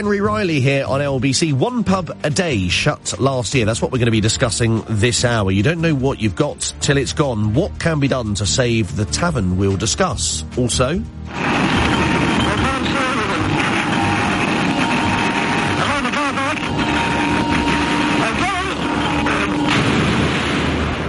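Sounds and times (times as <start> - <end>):
speech: 0.0 - 12.2
1960s hydroplane racing boat engine roaring: 11.3 - 20.2.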